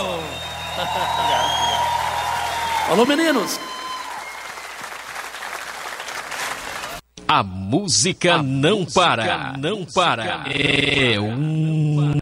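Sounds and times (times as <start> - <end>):
audience applauding: 0.0 - 7.0
speech: 0.8 - 1.7, 2.9 - 3.7, 7.3 - 12.1.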